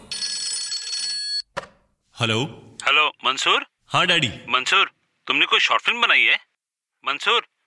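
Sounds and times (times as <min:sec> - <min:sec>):
telephone ringing: 0:00.0 - 0:01.5
speech: 0:02.2 - 0:07.5.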